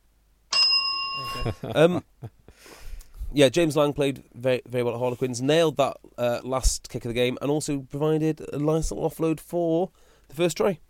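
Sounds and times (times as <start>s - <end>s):
synthetic bell ding: 0.5s - 1.6s
speech: 1.2s - 10.8s.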